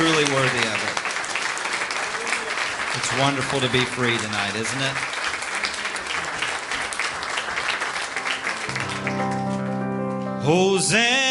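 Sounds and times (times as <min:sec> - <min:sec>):
crowd clapping: 0:00.0 - 0:10.2
speech: 0:03.1 - 0:05.2, 0:10.5 - 0:11.2
sustained organ chords: 0:08.0 - 0:11.2
person singing: 0:08.3 - 0:11.2.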